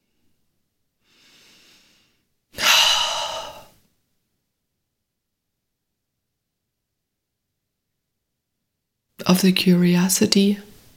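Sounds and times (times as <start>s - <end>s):
deep breath: 1.0s - 3.8s
speech: 9.3s - 10.7s.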